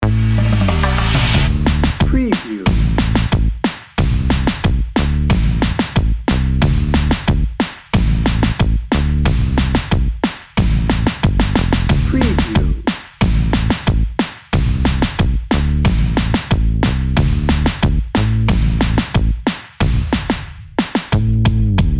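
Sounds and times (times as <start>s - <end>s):
happy upbeat reggaeton drum and bass music: 0.0s - 21.9s.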